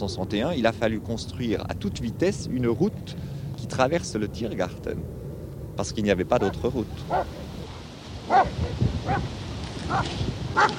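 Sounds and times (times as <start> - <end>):
speech: 0.0 - 5.2, 5.8 - 7.4, 8.3 - 10.7
low rumbling background: 0.0 - 7.8
dogs barking: 6.3 - 9.3, 9.9 - 10.7.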